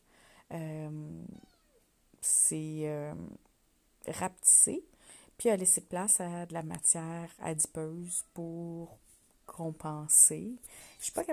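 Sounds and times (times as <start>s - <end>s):
speech: 0.5s - 1.4s, 2.5s - 3.4s, 4.0s - 11.3s
cat meowing: 1.3s - 1.8s.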